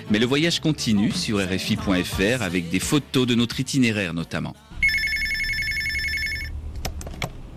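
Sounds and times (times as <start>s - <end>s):
speech: 0.1s - 4.7s
telephone bell ringing with a metallic trill: 4.8s - 6.5s.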